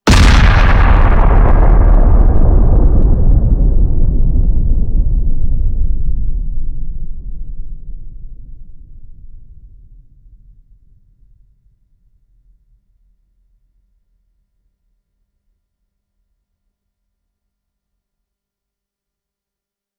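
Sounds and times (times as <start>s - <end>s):
big nuclear explosion: 0.1s - 9.8s.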